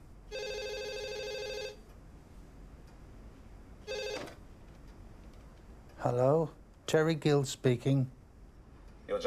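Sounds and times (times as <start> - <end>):
telephone ringing with a long electronic trill: 0.3 - 1.8, 3.8 - 4.4
speech: 6.0 - 8.2, 9.1 - 9.2.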